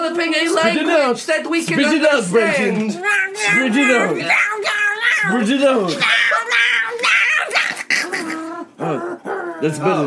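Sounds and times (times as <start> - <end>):
speech: 0.1 - 6.6, 9.6 - 10.0
cat yowling and meowing: 3.0 - 7.8.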